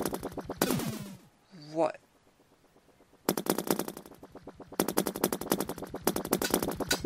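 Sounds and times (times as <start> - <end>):
rapid automatic gunfire from a video game: 0.0 - 1.2, 3.2 - 7.0
speech: 1.8 - 2.0.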